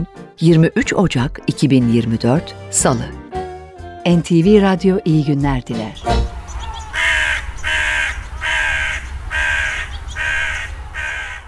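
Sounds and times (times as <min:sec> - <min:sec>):
speech: 0:00.0 - 0:03.3, 0:04.0 - 0:06.2
crow cawing: 0:06.3 - 0:11.4.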